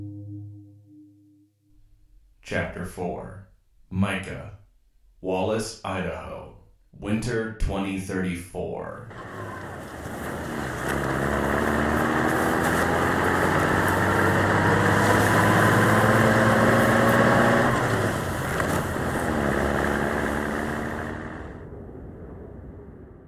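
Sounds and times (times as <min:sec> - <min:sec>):
speech: 0:02.5 - 0:04.6, 0:05.2 - 0:06.4, 0:06.9 - 0:09.7
pickup truck engine running while driving over snow-covered roads: 0:09.1 - 0:21.6.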